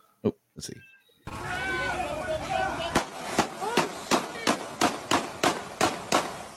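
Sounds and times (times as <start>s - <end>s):
speech: 0.2s - 1.6s
gunshots from several shooters on a played recording: 2.9s - 6.5s.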